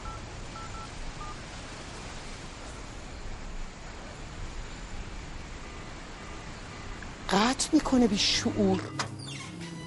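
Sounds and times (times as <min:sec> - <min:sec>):
telephone keypad beeps: 0:00.0 - 0:01.4
speech: 0:07.3 - 0:09.1.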